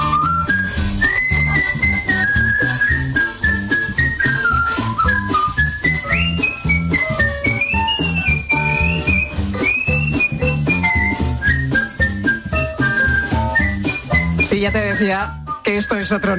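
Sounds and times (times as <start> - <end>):
skilled melodic whistling by a professional whistler: 0.0 - 16.3
steady musical accompaniment with a rhythmic beat: 0.0 - 16.3
speech: 14.7 - 16.3.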